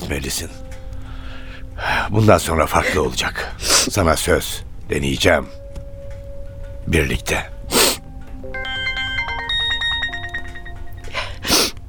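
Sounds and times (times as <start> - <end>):
speech: 0.1 - 0.8, 1.8 - 5.6, 6.9 - 7.5
mobile phone ringing with a melodic electronic tune: 8.4 - 11.4.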